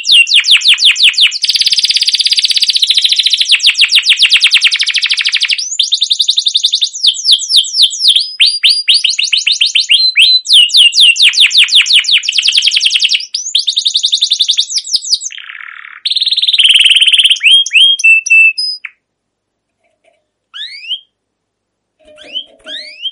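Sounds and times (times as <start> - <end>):
canary song with bright chirps and fast trills: 0.0 - 19.1, 19.7 - 21.2, 22.0 - 23.0.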